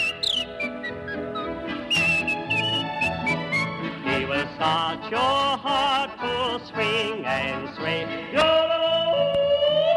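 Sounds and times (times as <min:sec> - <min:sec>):
person whistling a polka melody: 0:00.0 - 0:03.7
speech: 0:04.6 - 0:09.4.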